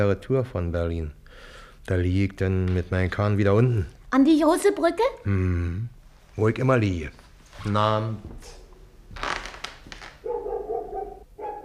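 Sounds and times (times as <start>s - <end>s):
speech: 0.0s - 8.6s
dog barking: 10.2s - 11.6s.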